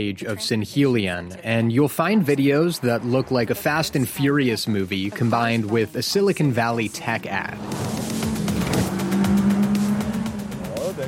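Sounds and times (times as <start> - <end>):
speech: 0.0 - 8.0
car engine revving, accelerating fast: 2.4 - 11.0.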